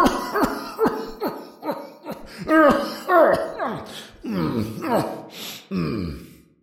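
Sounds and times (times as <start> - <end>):
man drunk on wine coughing in a niter-crusted underground vault: 0.0 - 6.2
strained gasping breaths: 0.9 - 3.1, 3.7 - 6.4.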